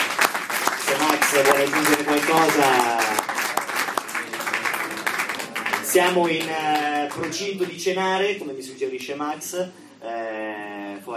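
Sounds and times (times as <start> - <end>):
audience applauding: 0.0 - 7.8
speech: 1.3 - 3.1, 5.9 - 11.1.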